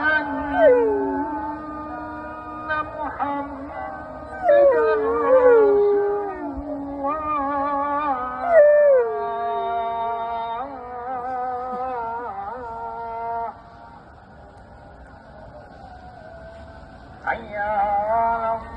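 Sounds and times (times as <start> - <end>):
domestic dog howling: 0.0 - 12.9
person chanting call to prayer: 0.0 - 18.7.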